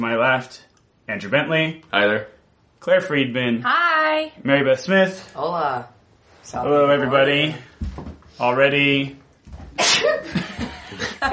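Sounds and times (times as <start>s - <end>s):
speech: 0.0s - 9.2s
person sneezing: 9.8s - 10.2s
laughter: 10.0s - 11.3s.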